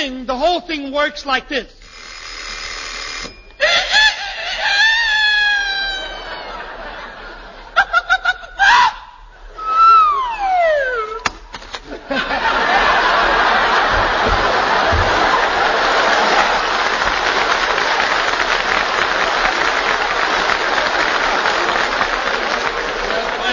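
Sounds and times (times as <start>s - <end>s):
speech: 0.0s - 1.8s
alarm clock ringing with rapid bell strikes: 1.8s - 3.9s
laughter: 3.6s - 23.5s.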